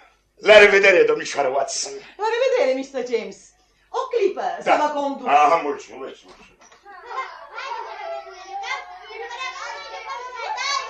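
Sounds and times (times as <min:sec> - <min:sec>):
speech: 0:00.4 - 0:06.5
children playing noisily in a street: 0:06.7 - 0:10.8.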